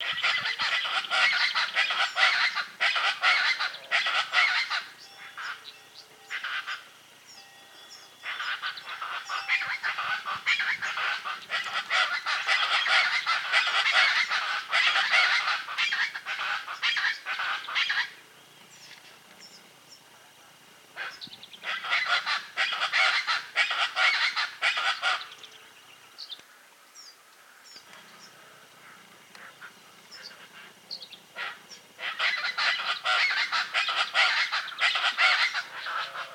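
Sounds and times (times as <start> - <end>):
chachalaca calling: 0.0 - 7.0, 8.0 - 18.2, 21.0 - 25.4, 29.3 - 36.3.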